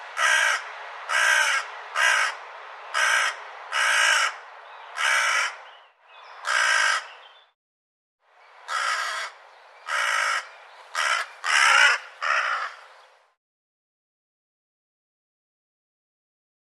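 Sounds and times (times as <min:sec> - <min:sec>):
bird cawing: 0:00.2 - 0:05.8, 0:06.4 - 0:07.3, 0:08.7 - 0:12.9.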